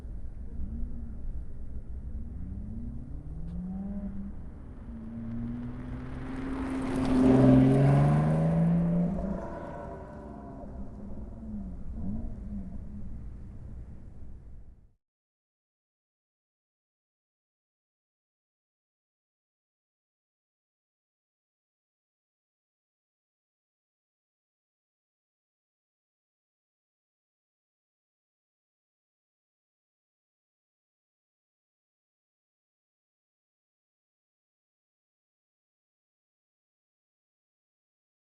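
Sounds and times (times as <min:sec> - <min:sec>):
Lotus Exige sports car passing by: 0:00.2 - 0:14.4.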